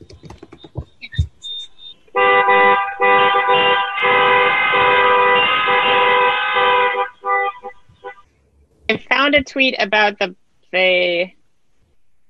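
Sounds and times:
street noise on Constitution Avenue in Washington D.C.: 0.0s - 11.3s
shorter truck honks: 1.6s - 8.2s
horns of protesting trucks blaring on Constitution Avenue in Washington D.C.: 2.1s - 8.3s
speech: 8.9s - 11.4s.

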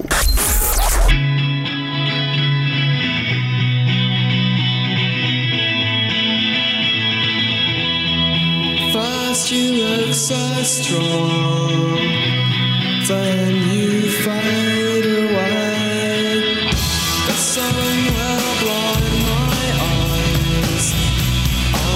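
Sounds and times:
loud dense shoegaze rock track with heavily distorted effects-drenched guitars: 1.1s - 21.9s.

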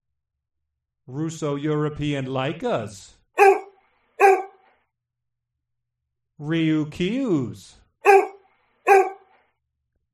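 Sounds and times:
speech: 1.1s - 3.5s, 6.4s - 8.2s
dog barking: 3.4s - 4.7s, 8.0s - 9.4s.

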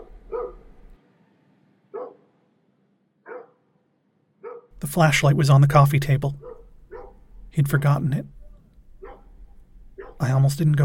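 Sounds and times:
dog barking: 0.0s - 0.7s, 1.9s - 2.3s, 3.2s - 3.6s, 4.4s - 4.7s, 6.4s - 7.2s, 9.0s - 9.4s, 10.0s - 10.2s
speech: 4.8s - 6.5s, 7.6s - 8.4s, 10.2s - 10.8s.

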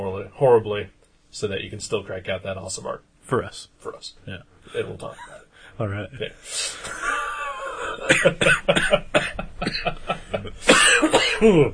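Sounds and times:
speech: 0.3s - 7.1s, 8.0s - 11.7s
person in a coughing fit: 7.6s - 11.7s.

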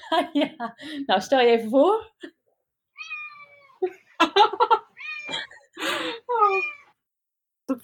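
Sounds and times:
speech: 0.1s - 2.4s, 3.8s - 6.8s
cat meowing for attention: 3.0s - 3.8s, 5.0s - 5.4s, 6.4s - 7.0s
laughter: 3.8s - 6.1s.

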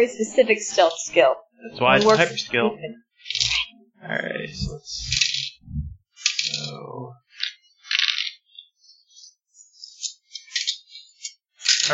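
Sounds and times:
speech: 0.0s - 3.4s, 4.0s - 5.9s, 6.5s - 7.2s
dice being picked up and rattled: 6.2s - 6.6s, 7.4s - 8.4s, 11.6s - 11.9s.

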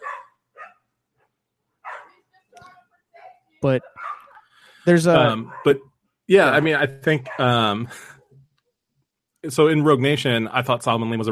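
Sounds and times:
passing dog barking frantically past a house: 0.0s - 0.8s, 1.8s - 2.2s, 3.8s - 4.4s, 5.4s - 5.8s, 6.6s - 7.6s
speech: 3.6s - 4.0s, 4.8s - 8.2s, 9.4s - 11.3s.

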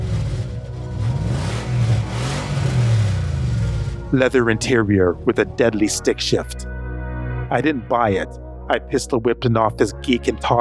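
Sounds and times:
muscle car engine revving with deep throaty growl: 0.0s - 5.9s
speech: 4.1s - 6.7s, 7.5s - 10.5s.

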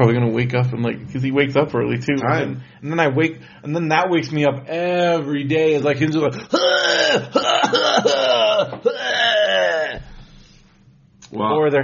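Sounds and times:
speech: 0.0s - 8.4s, 11.3s - 11.8s
hoarse raspy coughing: 6.4s - 10.2s.

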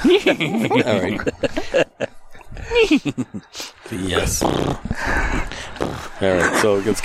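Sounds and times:
speech: 0.0s - 2.1s, 2.8s - 7.0s
laughter: 0.0s - 3.6s, 6.2s - 7.0s
heavy close-miked breathing into a microphone: 1.5s - 6.9s
low rumble from air hitting the microphone: 4.2s - 6.2s.

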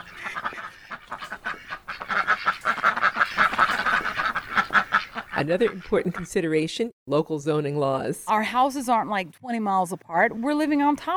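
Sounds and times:
flock of ducks quacking: 0.0s - 6.4s
speech: 5.4s - 11.1s.

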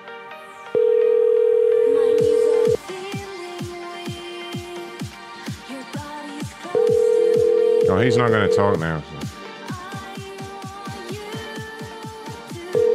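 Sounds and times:
outgoing phone call electronic ring tone: 0.7s - 2.8s, 6.8s - 8.9s, 12.7s - 12.9s
speech: 8.0s - 9.2s.

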